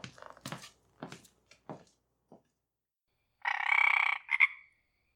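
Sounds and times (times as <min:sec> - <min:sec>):
frog croaking: 0:03.4 - 0:04.9.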